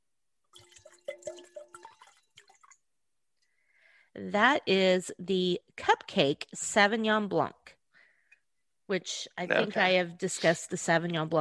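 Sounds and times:
Sauvignon Blanc wine pouring into a glass: 0.5 - 2.8
speech: 4.2 - 7.6, 8.9 - 11.4.

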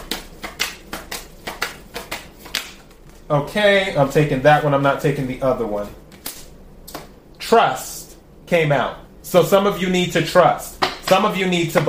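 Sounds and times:
tarot cards being shuffled and handled: 0.0 - 3.3, 5.8 - 7.1
speech: 3.3 - 6.0, 7.5 - 7.9, 8.5 - 11.8.

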